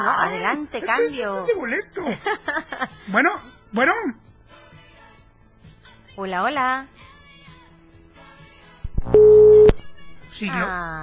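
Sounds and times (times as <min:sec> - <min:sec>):
speech: 0:00.0 - 0:04.3, 0:06.2 - 0:07.0, 0:10.4 - 0:11.0
laughter: 0:02.0 - 0:03.1
electronic telephone busy tone after a dropped call: 0:09.1 - 0:09.8.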